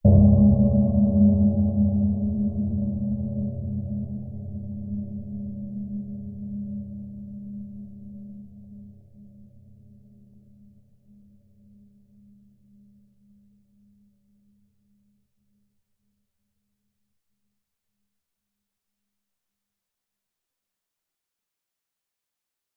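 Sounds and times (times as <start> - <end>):
dark deep metallic atmospheric low-pitched impact hit: 0.1 - 5.4.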